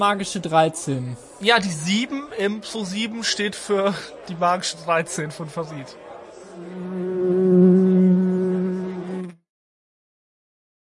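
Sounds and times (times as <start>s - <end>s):
speech: 0.0s - 6.0s
fly buzzing: 6.6s - 9.4s.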